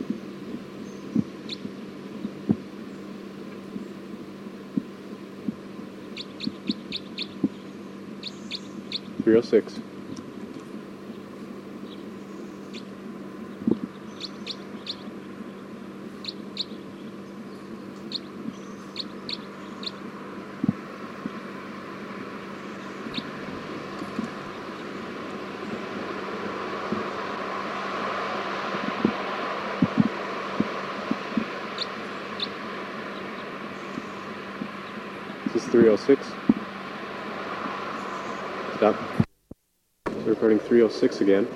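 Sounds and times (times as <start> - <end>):
steady low hum: 0.0 - 41.5
bird calling in short high chirps: 0.8 - 1.7, 6.1 - 9.2, 11.1 - 12.9, 13.5 - 20.0, 22.4 - 25.7, 31.7 - 35.5, 37.9 - 38.5
speech: 9.3 - 9.9, 36.1 - 36.3, 40.9 - 41.5.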